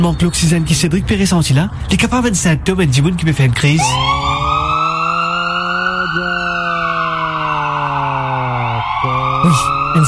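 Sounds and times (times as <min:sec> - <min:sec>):
speech: 0:00.0 - 0:04.2
ambulance siren wailing: 0:03.6 - 0:10.0.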